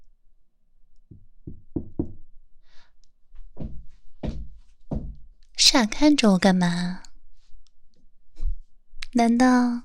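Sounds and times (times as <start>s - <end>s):
knocking on a dormitory door: 1.1s - 2.3s, 3.6s - 5.3s
speech: 5.7s - 7.0s, 9.2s - 9.8s.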